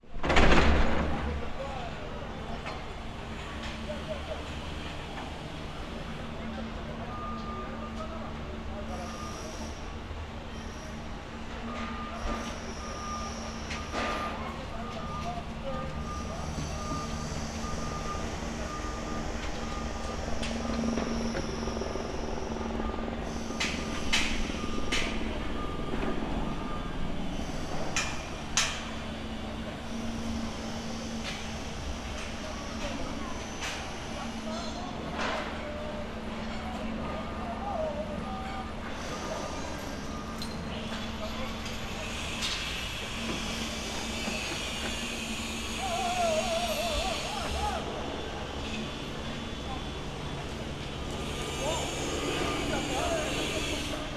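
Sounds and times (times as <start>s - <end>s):
construction site ambience: 0.0s - 54.1s.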